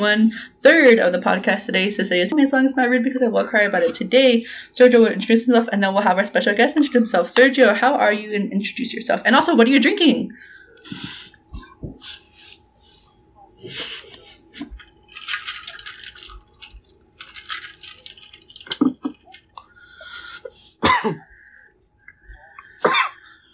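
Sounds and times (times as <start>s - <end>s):
speech: 0.0s - 11.2s, 13.6s - 14.0s, 21.0s - 21.3s
sharp coughs: 20.8s - 21.4s, 22.8s - 23.3s.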